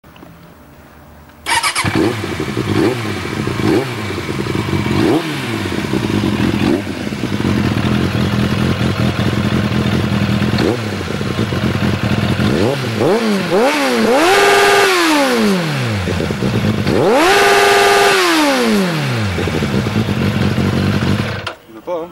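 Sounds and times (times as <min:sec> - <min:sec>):
Ixil Super Racing exhaust: 0:01.8 - 0:21.4.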